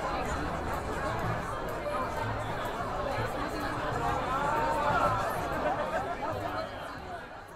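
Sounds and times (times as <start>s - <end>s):
crowd chatter in a busy media center: 0.0s - 7.5s
laughter: 5.6s - 6.6s.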